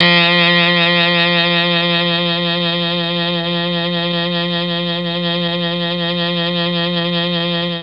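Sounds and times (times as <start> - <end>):
Mellotron saxophone sound: 0.0 - 7.8.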